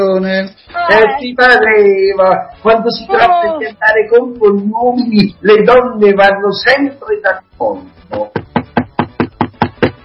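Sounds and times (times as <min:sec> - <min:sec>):
speech: 0:00.0 - 0:08.4
knocking on a door: 0:08.1 - 0:10.0.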